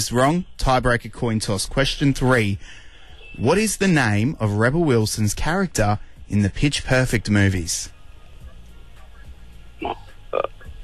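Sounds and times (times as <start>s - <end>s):
speech: 0.0s - 2.8s, 3.4s - 8.0s, 9.8s - 10.6s
faint hum: 0.0s - 10.8s
person burping: 9.8s - 10.7s.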